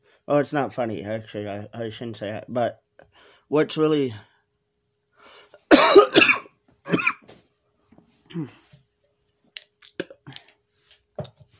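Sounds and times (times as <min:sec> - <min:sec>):
speech: 0:00.2 - 0:04.3, 0:08.4 - 0:08.6
person coughing hard: 0:05.7 - 0:07.3, 0:08.3 - 0:08.7
quiet throat sounds: 0:08.3 - 0:08.7, 0:09.6 - 0:10.5.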